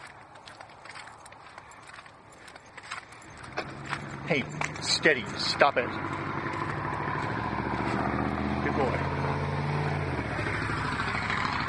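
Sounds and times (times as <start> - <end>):
car engine rumbling while passing by: 3.4 - 11.6
speech: 4.3 - 6.3.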